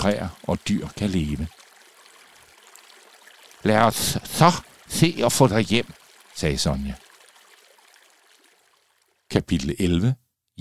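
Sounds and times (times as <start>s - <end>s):
speech: 0.0s - 1.6s, 3.6s - 7.0s, 9.3s - 10.5s
water trickling down a forest path: 0.0s - 9.5s.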